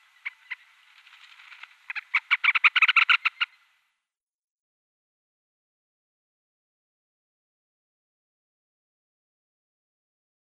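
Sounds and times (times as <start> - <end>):
ruddy turnstone calls: 0.0 - 3.7.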